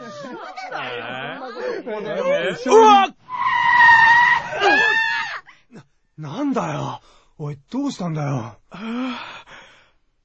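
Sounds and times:
laughter: 0:00.0 - 0:02.9, 0:04.4 - 0:05.0
speech: 0:00.7 - 0:03.2, 0:06.2 - 0:09.0
car tires screeching in a long skid as the car swerves: 0:03.3 - 0:05.2.

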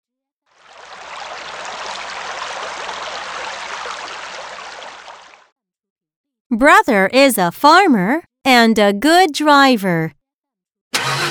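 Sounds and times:
flowing river water: 0:00.6 - 0:05.5
speech: 0:06.5 - 0:10.2.

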